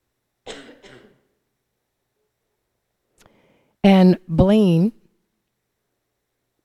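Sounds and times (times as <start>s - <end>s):
person coughing: 0.5s - 1.3s
rough throat-clearing rasp: 0.5s - 1.3s
speech: 3.8s - 5.0s.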